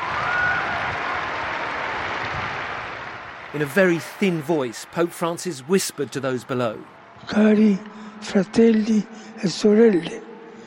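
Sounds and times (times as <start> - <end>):
large outdoor crowd in St. Peter's Square cheering and clapping at Easter: 0.0 - 7.7
speech: 3.5 - 10.3.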